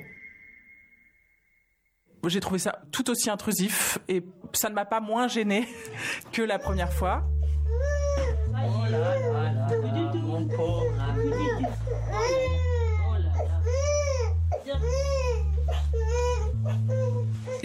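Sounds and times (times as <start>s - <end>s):
speech: 2.2s - 7.9s
baby crying and fussing: 6.6s - 17.6s.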